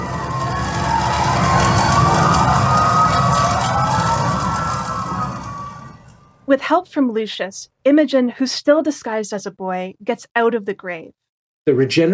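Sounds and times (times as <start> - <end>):
dense low rumble: 0.0 - 6.4
emergency sirens wailing: 0.0 - 6.4
speech: 6.5 - 12.1.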